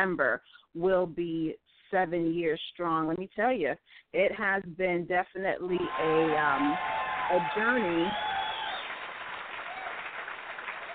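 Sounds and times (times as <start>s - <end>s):
speech: 0.0s - 8.3s
applause: 5.8s - 10.9s.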